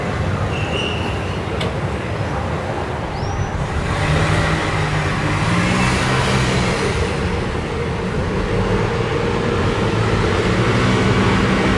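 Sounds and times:
evening traffic roar on a busy city street: 0.0s - 11.7s.

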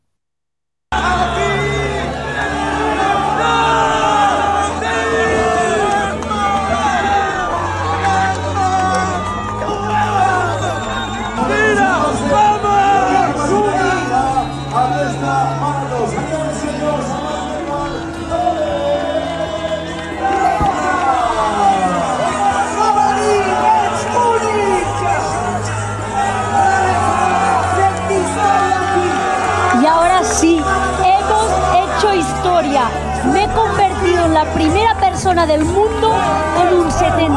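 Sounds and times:
large outdoor crowd cheering and shouting at marathon final stretch: 0.9s - 37.3s.

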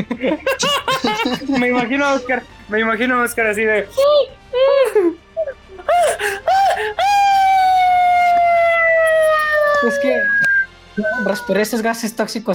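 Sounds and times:
laughter: 0.0s - 2.4s, 4.6s - 10.4s
speech: 0.2s - 0.8s, 1.6s - 5.2s, 9.8s - 12.5s
person imitating high-pitched girlish screaming: 5.9s - 11.6s.

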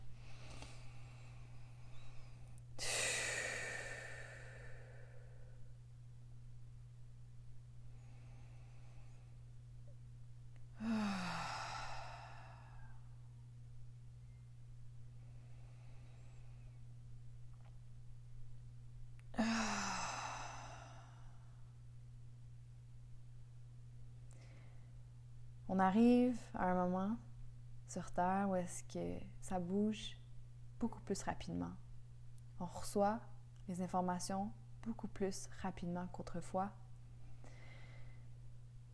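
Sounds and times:
slow deep breaths in and out: 0.0s - 5.8s, 7.9s - 9.5s, 10.8s - 13.1s, 15.1s - 16.9s, 19.4s - 21.6s, 24.3s - 25.0s, 37.2s - 38.4s
faint steady hum: 0.0s - 38.9s
speech: 25.7s - 27.3s, 27.9s - 30.2s, 30.8s - 31.8s, 32.6s - 36.8s.

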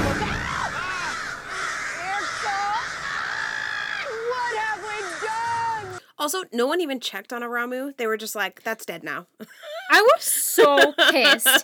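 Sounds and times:
large flock of birds cawing: 0.3s - 6.0s
speech: 6.2s - 11.6s
laughter: 9.6s - 11.6s.

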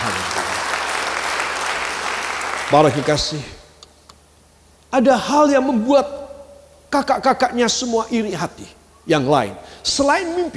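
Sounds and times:
audience applause at a Christian sermon: 0.0s - 3.2s
speech: 2.7s - 3.6s, 4.9s - 6.2s, 6.9s - 10.5s.

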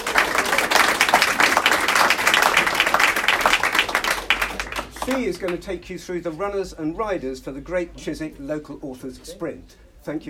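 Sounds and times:
audience applause: 0.0s - 5.6s
speech: 5.1s - 10.2s.

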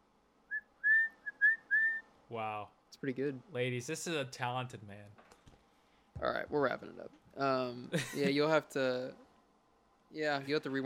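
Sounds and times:
man whistling: 0.5s - 2.1s
speech: 2.3s - 5.2s, 6.2s - 9.2s, 10.1s - 10.8s.

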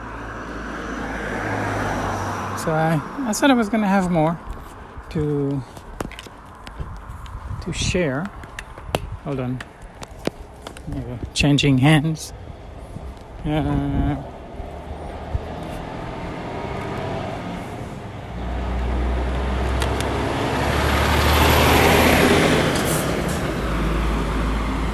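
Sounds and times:
loaded logging truck driving past: 0.0s - 3.5s, 14.2s - 24.9s
speech: 2.6s - 4.5s, 5.1s - 5.8s, 7.7s - 8.4s, 9.2s - 9.7s, 10.9s - 12.4s, 13.4s - 14.3s.

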